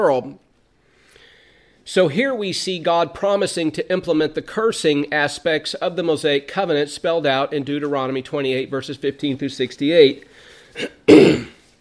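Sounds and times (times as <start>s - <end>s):
speech: 0.0s - 0.4s, 1.9s - 11.5s
throat clearing from a tickle in the throat: 10.8s - 11.7s.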